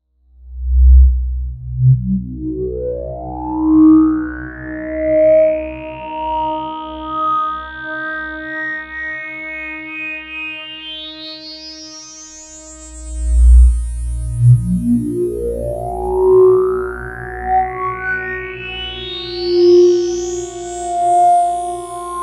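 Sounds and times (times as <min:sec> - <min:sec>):
Roland Jupiter-6 synthesizer tone with beautiful overtones: 0:00.5 - 0:07.2, 0:12.9 - 0:22.2.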